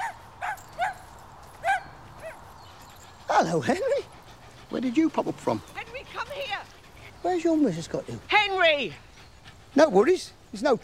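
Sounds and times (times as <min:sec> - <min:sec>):
dog barking in a park: 0:00.0 - 0:02.5
speech: 0:03.4 - 0:04.1, 0:04.7 - 0:05.8, 0:07.2 - 0:09.1, 0:09.8 - 0:10.8.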